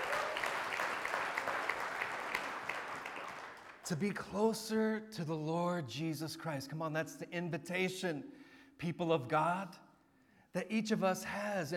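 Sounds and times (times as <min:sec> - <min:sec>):
large audience clapping: 0:00.0 - 0:03.9
speech: 0:03.9 - 0:09.8, 0:10.5 - 0:11.7.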